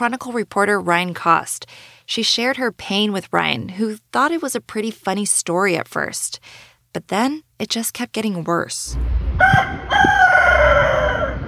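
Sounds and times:
speech: 0.0 - 9.7
rooster crowing: 9.4 - 11.4.

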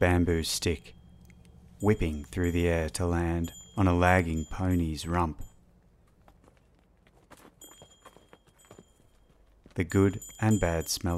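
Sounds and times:
speech: 0.0 - 1.0, 1.8 - 5.5, 9.8 - 11.1
thin high bells ringing: 0.0 - 5.8, 7.4 - 11.1
string of ponies' hooves clopping on steep rocky mountain track: 6.0 - 11.0.

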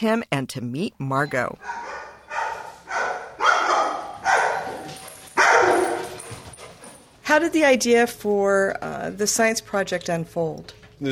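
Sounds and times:
speech: 0.0 - 2.0, 7.3 - 11.0
Labrador retriever barking: 1.6 - 6.3.

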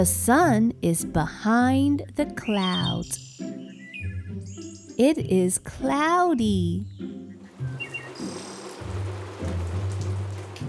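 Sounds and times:
speech: 0.0 - 3.6, 5.0 - 7.2
brief bird chirps: 2.2 - 5.6, 6.7 - 8.9
steady hiss of falling rain: 7.4 - 10.6.

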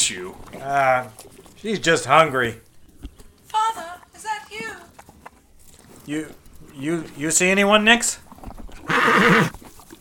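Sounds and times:
speech: 0.1 - 2.7, 6.1 - 8.2, 9.0 - 9.6
horse whinnying in a stable: 8.8 - 9.6.

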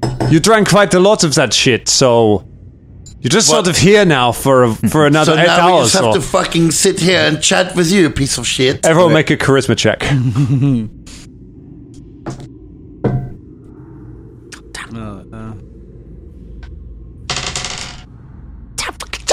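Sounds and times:
speech: 0.3 - 2.5, 3.2 - 11.1
dice clattering across a hard table in a tabletop role-playing game: 17.3 - 18.1.

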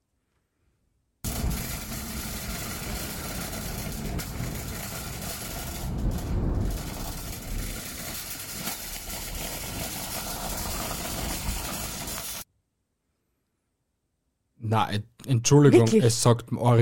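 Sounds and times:
shopping cart rolling over a street: 1.3 - 12.4
speech: 14.7 - 16.8.

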